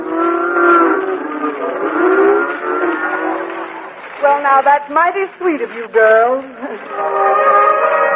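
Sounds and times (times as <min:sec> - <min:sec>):
car engine droning while cruising: 0:00.0 - 0:04.0
speech: 0:04.5 - 0:08.0.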